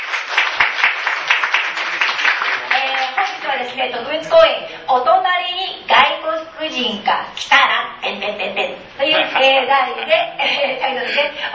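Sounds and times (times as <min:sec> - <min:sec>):
audience applause in a room full of people: 0:00.0 - 0:03.5
speech: 0:03.6 - 0:11.5
laughter: 0:09.0 - 0:11.4.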